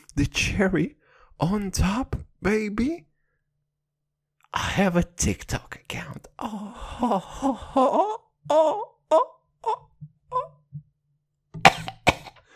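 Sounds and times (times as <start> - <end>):
speech: 0.2 - 3.1, 4.5 - 10.4
person moaning and groaning: 6.4 - 10.6
person coughing sharply: 11.7 - 12.4.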